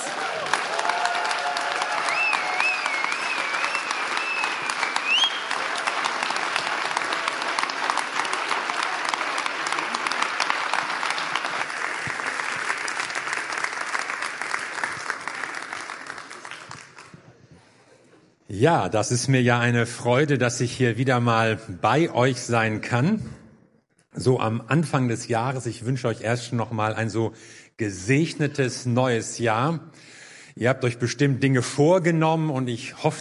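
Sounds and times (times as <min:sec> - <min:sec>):
cheers and whistles from audience: 0:00.0 - 0:06.0
large standing audience applauding to welcome a guest: 0:00.0 - 0:17.3
speech: 0:18.6 - 0:23.4, 0:24.2 - 0:33.1.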